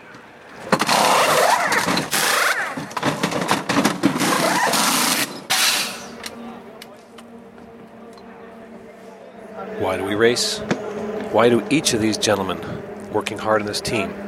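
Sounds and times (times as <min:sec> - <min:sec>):
race car engine roaring in a pit stop: 0:00.0 - 0:14.2
pneumatic wrenches rattling during pit stop practice: 0:00.6 - 0:06.3
speech: 0:10.0 - 0:14.2.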